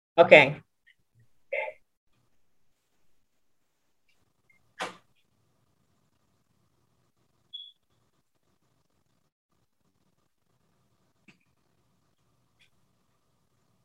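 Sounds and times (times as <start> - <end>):
speech: 0.2 - 0.6
faint door squeak: 7.5 - 7.8.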